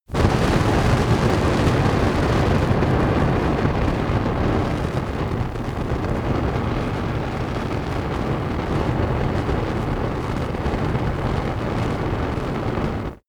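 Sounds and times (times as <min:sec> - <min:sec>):
fire burst: 0:00.0 - 0:13.2.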